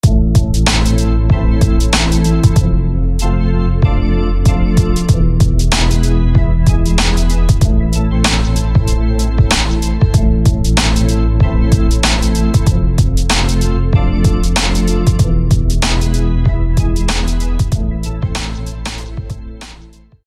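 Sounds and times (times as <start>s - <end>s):
deep pipes: 0.0s - 19.8s.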